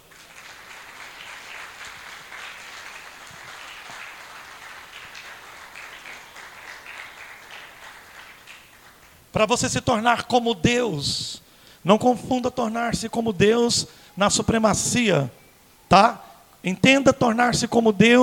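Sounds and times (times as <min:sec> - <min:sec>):
audience applauding: 0:00.0 - 0:09.2
speech: 0:09.4 - 0:18.2.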